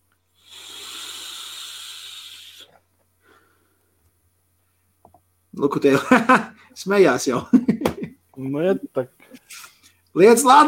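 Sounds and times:
vapour exhaled from a heated tobacco device: 0:00.3 - 0:03.8
short faint breathy puff: 0:00.4 - 0:03.6
speech: 0:05.6 - 0:07.7, 0:08.4 - 0:09.6, 0:10.2 - 0:10.6.

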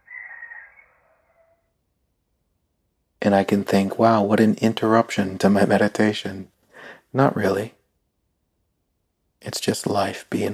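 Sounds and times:
rooster crowing outdoors: 0:00.0 - 0:01.8
speech: 0:03.2 - 0:06.5, 0:07.1 - 0:07.8, 0:09.4 - 0:10.5.

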